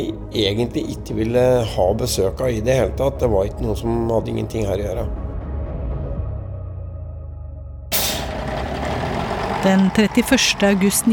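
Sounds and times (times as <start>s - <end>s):
speech: 0.0s - 5.2s, 9.6s - 11.1s
bus air brakes hissing: 7.9s - 8.5s
heavy bus engine idling on the E6: 7.9s - 11.1s.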